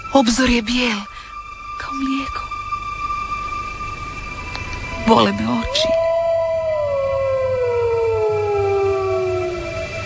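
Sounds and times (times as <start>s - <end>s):
steady low hum: 0.0s - 10.0s
speech: 0.1s - 1.1s, 1.8s - 2.5s, 5.1s - 6.0s
wolf howling at dawn: 4.5s - 10.0s.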